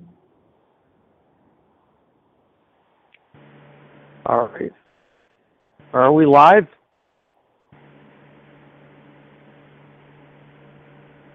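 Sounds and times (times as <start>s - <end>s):
low electrical hum: 0.0s - 11.3s
steady broadband static hiss on live stream audio: 2.5s - 11.3s
speech: 4.3s - 4.8s, 5.9s - 6.8s.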